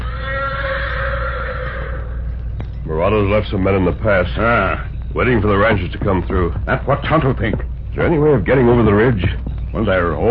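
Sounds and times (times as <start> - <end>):
black horse whinnying in answer to another horse: 0.0 - 2.6
constant low rumble: 0.0 - 10.2
speech: 3.0 - 10.2.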